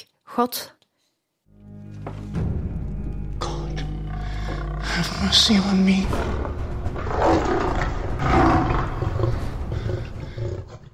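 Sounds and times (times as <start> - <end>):
speech: 0.0 - 0.8, 5.0 - 8.4
several lions in a den roaring and growling: 3.4 - 10.9.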